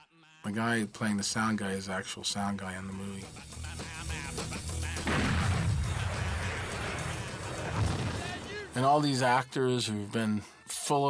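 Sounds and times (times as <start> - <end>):
speech: 0.4 - 4.5, 8.8 - 11.0
real gas bomb explosion in a building: 5.0 - 8.8.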